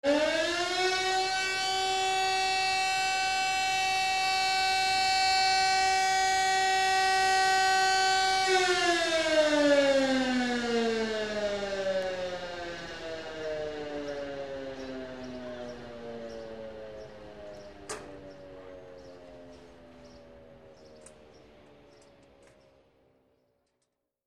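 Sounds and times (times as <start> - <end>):
factory noise: 0.1 - 22.6.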